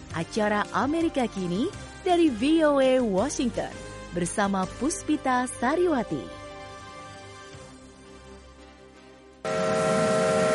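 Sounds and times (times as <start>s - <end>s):
speech: 0.2s - 6.4s
steam locomotive whistle at a heritage railroad: 9.5s - 10.5s.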